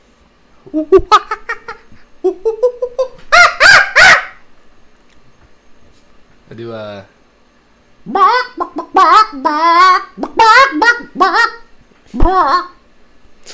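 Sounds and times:
speech: 0.6 - 1.4, 6.6 - 7.2, 8.0 - 8.4, 9.0 - 12.8
person imitating a chicken clucking and squawking: 0.6 - 4.3, 8.0 - 12.8.

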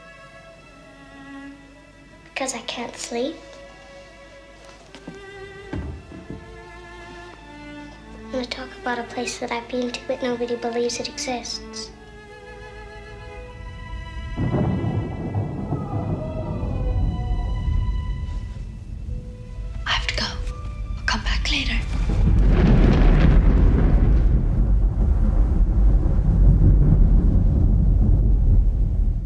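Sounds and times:
speech: 2.4 - 3.5, 8.4 - 12.0
deep rumble of thunder: 5.6 - 7.0, 10.4 - 29.2
eerie tones: 12.4 - 25.1.

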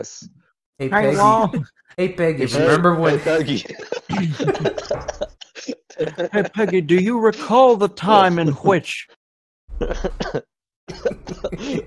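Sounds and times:
speech: 0.0 - 9.2, 9.8 - 11.8
laughter: 2.6 - 7.8, 9.8 - 11.8
person coughing harshly: 3.8 - 6.6, 9.8 - 11.8.

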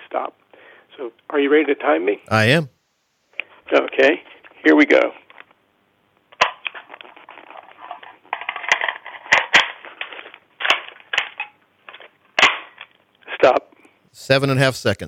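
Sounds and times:
speech: 0.1 - 2.8, 3.7 - 5.2, 14.2 - 15.0
rifle empty magazine removed, magazine replaced and gun readied to fire: 6.4 - 12.1.

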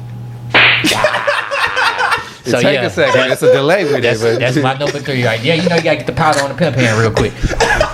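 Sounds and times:
low electrical hum: 0.0 - 7.9
sharp slap sound effect: 0.5 - 1.0
whip-like snap: 0.5 - 1.0
speech: 0.8 - 1.1, 2.4 - 7.9
laughter: 0.8 - 7.9.

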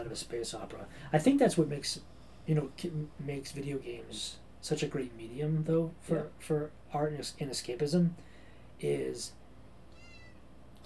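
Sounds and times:
speech: 0.0 - 9.4
cat meowing in the background: 9.9 - 10.4.

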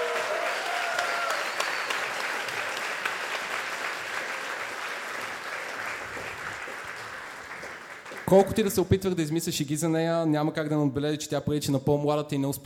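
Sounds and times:
audience applause at a live comedy roast: 0.0 - 8.6
speech: 8.3 - 12.6.

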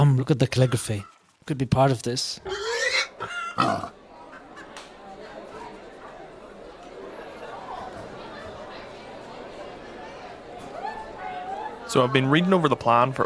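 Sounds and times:
speech: 0.0 - 2.6, 3.2 - 4.0, 11.9 - 13.2
crowd chatter: 1.8 - 13.2
pig grunting and oinking: 2.4 - 4.0.

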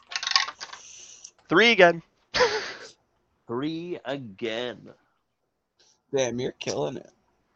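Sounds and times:
dice clattering as damage is rolled in a tabletop role-playing game: 0.0 - 0.9
speech: 1.5 - 2.5, 3.5 - 5.0, 6.1 - 7.2.

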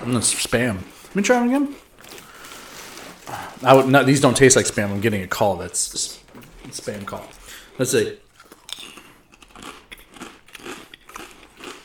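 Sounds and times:
speech: 0.0 - 2.2, 3.6 - 8.2
crunching and chewing barbecue potato chips: 0.0 - 11.8.

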